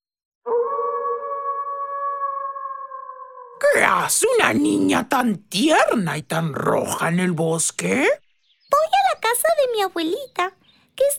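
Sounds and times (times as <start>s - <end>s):
wolf howling: 0.5s - 3.6s
speech: 3.8s - 11.1s.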